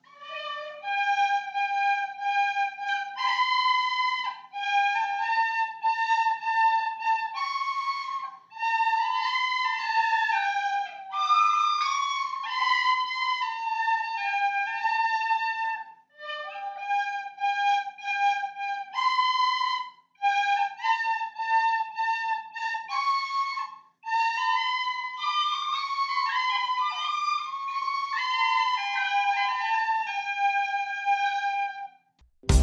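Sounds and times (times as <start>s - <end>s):
primary school children playing a simple tune on tin whistles: 0.0s - 31.8s.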